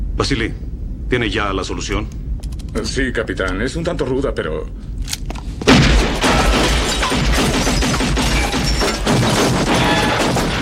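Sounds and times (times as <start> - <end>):
speech: 0.2 - 5.2
dense sustained crashing rumble: 5.6 - 10.6
gunshot boom: 5.7 - 10.6.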